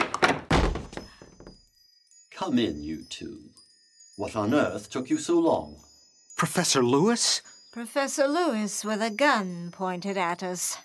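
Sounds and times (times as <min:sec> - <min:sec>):
door being kicked in: 0:00.0 - 0:01.6
speech: 0:02.4 - 0:03.6, 0:04.2 - 0:10.8.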